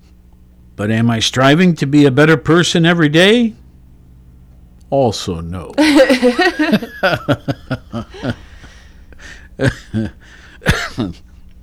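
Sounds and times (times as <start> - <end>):
speech: 0.8 - 3.6, 4.9 - 8.4, 9.6 - 11.3
person chuckling: 5.8 - 11.3
person coughing: 5.8 - 11.4
person clearing throat: 9.3 - 11.3.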